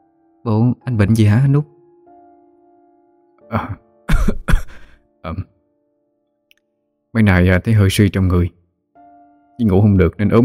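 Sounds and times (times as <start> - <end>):
speech: 0.4 - 1.7, 5.2 - 5.6, 7.1 - 8.6, 9.6 - 10.4
thin pale unwell man coughing with light hacking coughs: 3.5 - 5.0.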